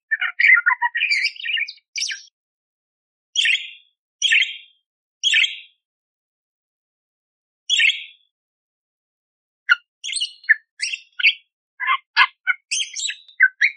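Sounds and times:
budgerigar chirping: 0:00.1 - 0:02.3, 0:03.4 - 0:04.6, 0:07.7 - 0:08.1, 0:09.7 - 0:13.7.

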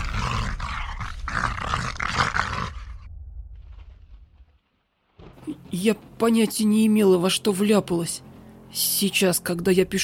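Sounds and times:
low rough growling in a house: 0:00.0 - 0:03.4
speech: 0:05.7 - 0:10.0.

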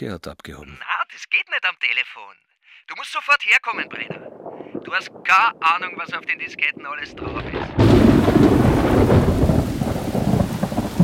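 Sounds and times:
speech: 0:00.0 - 0:09.1
thunder rumbling in a thunderstorm: 0:03.8 - 0:11.0
heavy rain pouring in a thunderstorm: 0:04.6 - 0:11.0.

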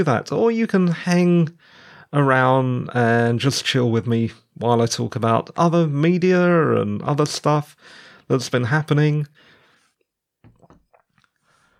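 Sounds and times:
speech: 0:00.0 - 0:09.5
slurps and swallows of water from a glass: 0:10.4 - 0:11.5.

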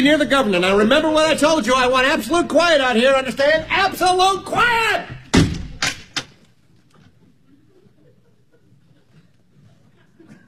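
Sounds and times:
speech: 0:00.0 - 0:05.2
door closing and locking: 0:05.3 - 0:06.4
laughter: 0:07.4 - 0:10.4.

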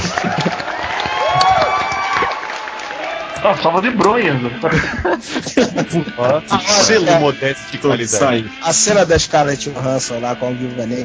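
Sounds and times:
laughter: 0:00.0 - 0:01.1, 0:03.4 - 0:08.1
crowd applause: 0:00.0 - 0:04.5
speech: 0:03.4 - 0:11.0.

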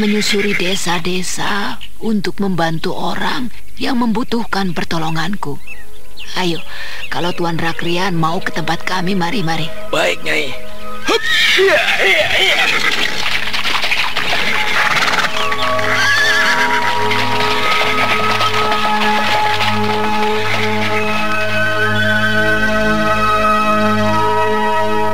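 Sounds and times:
speech: 0:00.0 - 0:13.0
loud sustained tonal background: 0:02.5 - 0:12.6, 0:14.3 - 0:25.1
horse neighing while pulling a cart: 0:11.0 - 0:13.3, 0:14.5 - 0:17.5
soft horse hoof clops: 0:11.1 - 0:24.3.

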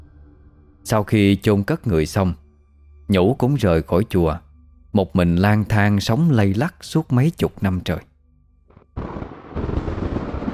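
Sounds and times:
speech: 0:00.9 - 0:02.4, 0:03.1 - 0:08.1
thunder clap booming through the sky: 0:09.0 - 0:10.5.

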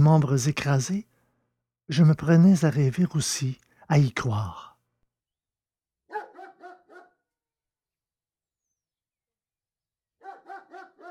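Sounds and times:
speech: 0:00.0 - 0:01.1, 0:01.9 - 0:04.7
dog yapping: 0:06.1 - 0:07.2, 0:10.2 - 0:11.1.

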